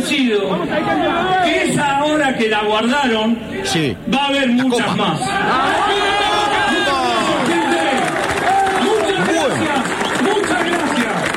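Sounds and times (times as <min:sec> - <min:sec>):
speech: 0:00.1 - 0:06.2
crowd at an assembly applauding behind glass: 0:05.5 - 0:11.3.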